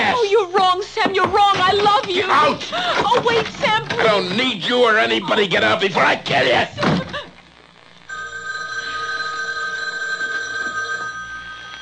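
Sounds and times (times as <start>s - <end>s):
speech: 1.1s - 6.9s
house telephone bell ringing: 8.1s - 11.8s.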